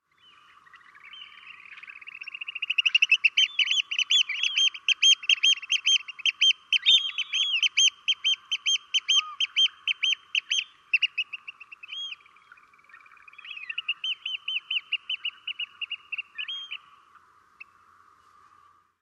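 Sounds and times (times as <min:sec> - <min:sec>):
oystercatcher calling: 0:01.2 - 0:12.3, 0:13.0 - 0:16.9.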